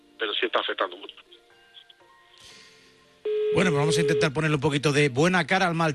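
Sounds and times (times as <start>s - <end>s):
speech: 0.2s - 1.3s, 3.5s - 5.9s
telephone electronic ring: 3.3s - 4.6s.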